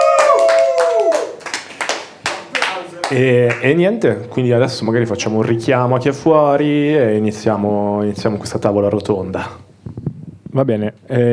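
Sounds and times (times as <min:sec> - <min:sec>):
applause at a round-table event: 0:00.0 - 0:03.7
speech: 0:03.1 - 0:09.6, 0:10.6 - 0:11.3.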